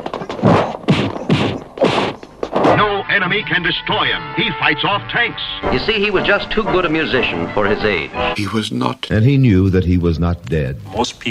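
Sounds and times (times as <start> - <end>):
firm slaps on a person's back: 0.2 - 2.8
speech: 3.2 - 11.3.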